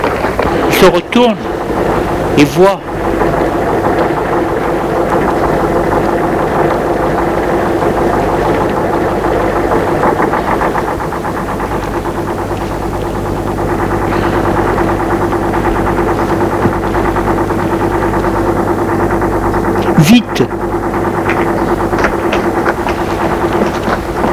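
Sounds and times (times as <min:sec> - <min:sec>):
truck engine idling: 0:00.0 - 0:24.3
speech: 0:00.8 - 0:03.4, 0:20.4 - 0:20.6.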